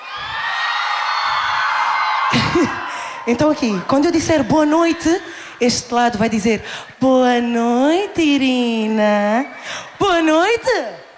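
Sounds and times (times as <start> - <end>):
large crowd screaming and cheering: 0.0 - 4.6
speech: 2.5 - 11.0.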